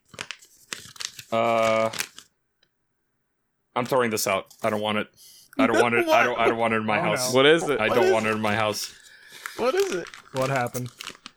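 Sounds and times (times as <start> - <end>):
paper crinkling and tearing while unwrapping a package: 0.0 - 2.3, 7.7 - 11.3
speech: 1.3 - 2.1, 3.8 - 9.0, 9.6 - 11.0
laughter: 5.6 - 10.1.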